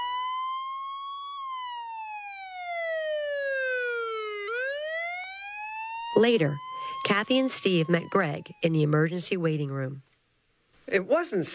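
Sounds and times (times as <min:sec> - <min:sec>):
arriving ambulance siren wailing: 0:00.0 - 0:08.9
speech: 0:06.2 - 0:10.1, 0:10.9 - 0:11.5.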